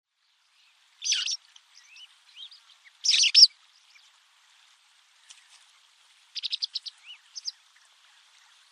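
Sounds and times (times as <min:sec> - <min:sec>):
bird chirping: 0:00.5 - 0:04.1, 0:06.3 - 0:08.7
buzzy bird calls: 0:01.0 - 0:03.5, 0:06.3 - 0:08.7.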